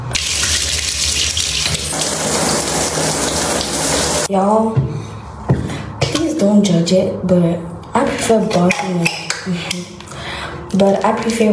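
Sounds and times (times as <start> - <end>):
shower water running: 0.0 - 4.3
speech: 4.3 - 5.0, 6.4 - 10.0, 10.7 - 11.5.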